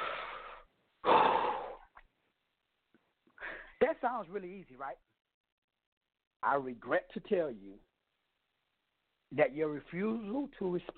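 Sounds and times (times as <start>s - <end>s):
controlled breathing: 0.0s - 1.9s
speech: 4.0s - 5.2s, 6.4s - 7.9s, 9.3s - 10.9s.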